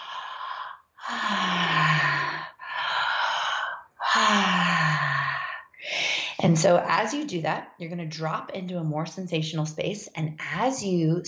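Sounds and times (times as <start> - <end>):
person breathing deeply in a guided exercise: 0.0 - 6.4
soft voiced sigh on the exhales: 0.0 - 6.4
speech: 6.5 - 11.2.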